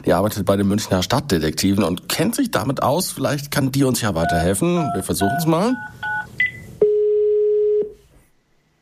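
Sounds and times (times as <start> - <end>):
speech: 0.0 - 6.2
telephone dialing tones as someone places a phone call: 4.2 - 7.8.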